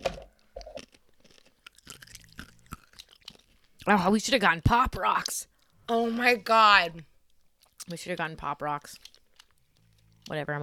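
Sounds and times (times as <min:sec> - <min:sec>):
crunchy chomping on small pieces of Halloween candy: 0:00.4 - 0:03.9, 0:08.8 - 0:10.6
speech: 0:03.9 - 0:07.1, 0:07.9 - 0:09.1, 0:10.3 - 0:10.6.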